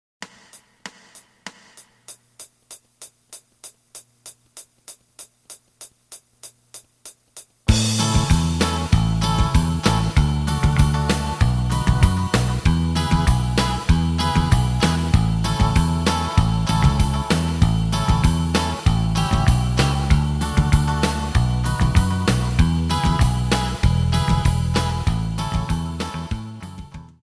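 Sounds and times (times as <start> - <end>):
lead guitar: 7.7 - 27.1.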